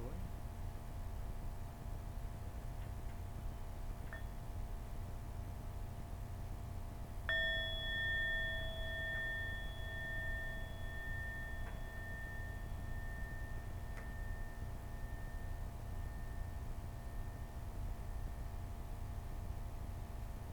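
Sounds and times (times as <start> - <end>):
low hum: 0.0 - 20.5
meditation bell struck: 7.2 - 18.7.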